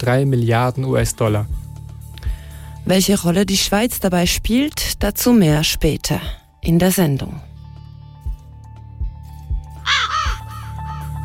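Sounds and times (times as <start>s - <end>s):
speech: 0.0s - 1.6s, 2.9s - 7.5s
raven cawing in station jingle: 9.8s - 11.2s.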